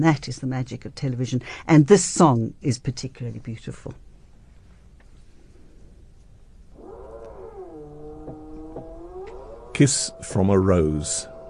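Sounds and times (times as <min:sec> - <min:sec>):
speech: 0:00.0 - 0:04.1, 0:09.8 - 0:11.3
low hum: 0:00.0 - 0:11.4
drilling from works in the building: 0:06.7 - 0:11.4.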